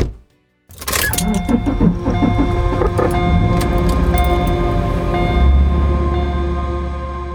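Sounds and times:
car engine cranking and starting: 0.7 - 6.2
car driving away from town: 0.8 - 7.3.

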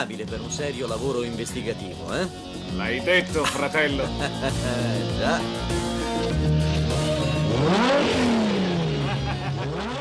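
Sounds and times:
speech: 0.0 - 6.6
laughter: 3.4 - 5.1, 8.9 - 9.9
Ferrari Testarossa engine idling and revving: 4.1 - 9.9.

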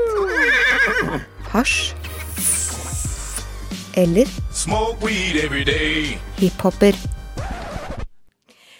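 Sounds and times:
horse neighing: 0.2 - 1.3
speech: 1.5 - 2.0, 4.0 - 7.2.

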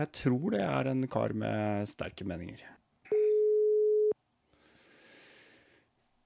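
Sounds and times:
speech: 0.0 - 2.8
telephone ringback tone on outgoing call: 3.1 - 4.2.

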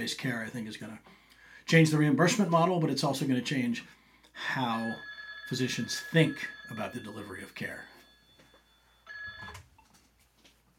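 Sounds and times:
speech: 0.0 - 7.9
office telephone giving short electronic warbling ring: 4.4 - 10.0.

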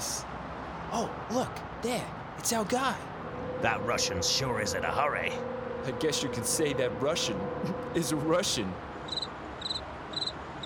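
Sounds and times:
speech: 0.9 - 9.2
pet cricket chirping: 9.1 - 10.6.

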